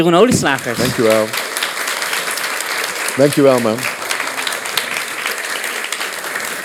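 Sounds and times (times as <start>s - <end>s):
speech: 0.0s - 1.5s, 3.2s - 4.0s
laughter: 0.2s - 6.6s
audience applauding: 0.3s - 6.6s.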